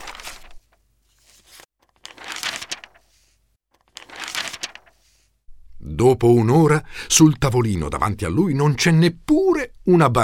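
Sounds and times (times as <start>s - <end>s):
newspaper sheet crinkling and rustling as it is folded into a paper toy: 0.0s - 5.3s
speech: 6.0s - 10.2s.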